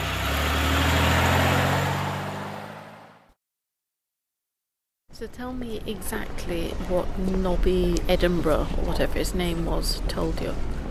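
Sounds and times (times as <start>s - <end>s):
car engine running: 0.0s - 3.2s
speech: 5.2s - 10.7s.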